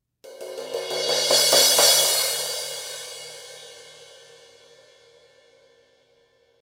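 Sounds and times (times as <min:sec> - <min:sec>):
thin crash cymbal: 0:00.3 - 0:06.4.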